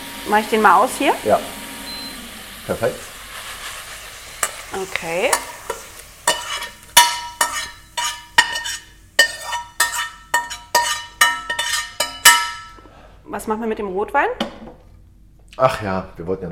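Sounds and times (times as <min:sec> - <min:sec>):
speech: 0:00.2 - 0:01.6, 0:02.7 - 0:03.1, 0:04.7 - 0:05.5, 0:13.4 - 0:14.8, 0:15.6 - 0:16.5
utensil scraping cooked salted food from a pan into a blender: 0:03.0 - 0:12.7.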